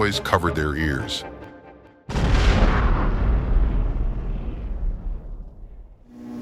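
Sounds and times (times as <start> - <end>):
speech: 0.0 - 1.3
cannon firing a cannonball: 2.1 - 6.1.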